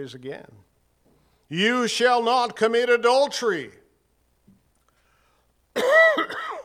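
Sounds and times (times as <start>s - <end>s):
speech: 0.0s - 0.7s, 1.5s - 3.8s, 5.8s - 6.3s
throaty cough: 5.8s - 6.6s.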